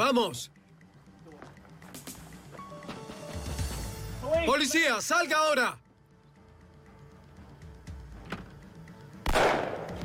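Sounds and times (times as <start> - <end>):
speech: 0.0 - 0.6, 4.2 - 5.8
loud gunshot: 9.3 - 10.0.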